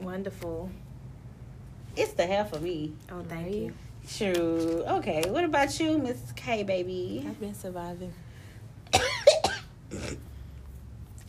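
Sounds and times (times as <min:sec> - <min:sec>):
speech: 0:00.1 - 0:00.9, 0:02.0 - 0:08.2, 0:09.9 - 0:10.3
sharp broadband coughs: 0:08.9 - 0:10.3
soft breathy throat sound: 0:09.9 - 0:10.6.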